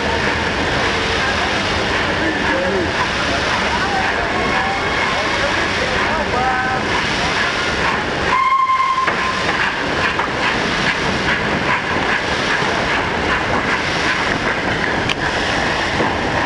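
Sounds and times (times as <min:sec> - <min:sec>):
hissing steam of a steam locomotive: 0:00.0 - 0:16.4
rattling wheels of a 1930s passenger train: 0:00.0 - 0:16.4
steam locomotive whistle blast: 0:08.3 - 0:09.4.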